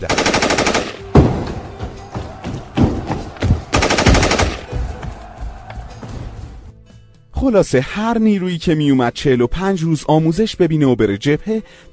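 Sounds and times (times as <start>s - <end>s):
gunfire bursts: 0.0s - 1.4s, 3.7s - 4.8s
speech: 7.4s - 11.9s.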